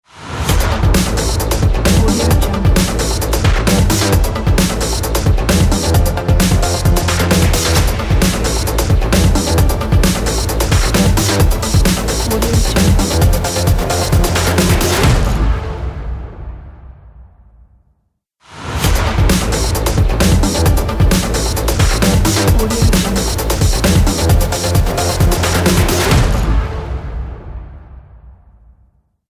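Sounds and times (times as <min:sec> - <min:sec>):
energetic electronic logo jingle: 0:00.5 - 0:15.6, 0:18.9 - 0:26.6.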